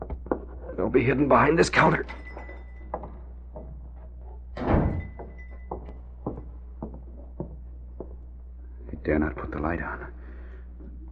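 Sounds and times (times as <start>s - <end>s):
low steady hum: 0.0s - 11.1s
speech: 0.8s - 2.2s, 9.1s - 10.1s
front door opening and closing: 4.5s - 6.0s.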